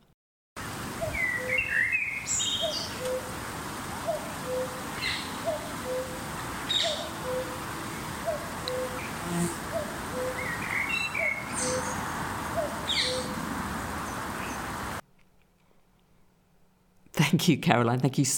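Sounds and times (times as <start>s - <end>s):
other birds chirping and twittering: 0.9s - 15.0s
common cuckoo calling in spring: 1.0s - 3.4s, 4.0s - 13.4s
speech: 17.4s - 18.3s.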